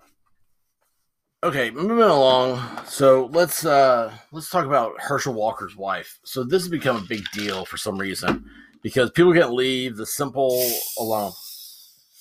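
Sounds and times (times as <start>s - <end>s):
speech: 1.4s - 11.4s
can of soda cracked open: 6.8s - 7.6s
soda fizzing hiss: 10.5s - 12.1s.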